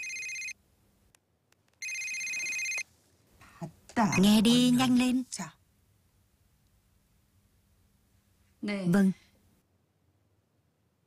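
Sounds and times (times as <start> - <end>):
electronic telephone ringtone chime: 0.0 - 0.6, 1.8 - 2.8
speech: 3.6 - 5.6, 8.6 - 9.2.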